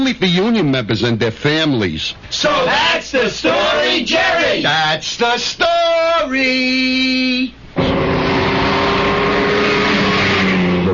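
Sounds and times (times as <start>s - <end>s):
speech: 0.0s - 8.3s
Alfa Romeo racing car engine roaring: 7.8s - 10.9s.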